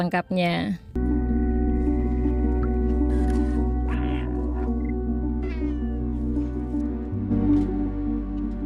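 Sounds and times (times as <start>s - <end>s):
speech: 0.0s - 1.0s
steady humming droning video game soundtrack: 0.9s - 8.6s
cat meowing in a video game: 3.8s - 4.8s, 5.4s - 6.1s.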